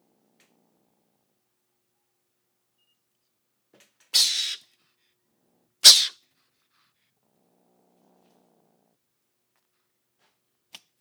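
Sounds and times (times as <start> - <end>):
mongoose giving a harsh breathy hiss: 4.2 - 4.6, 5.8 - 6.1.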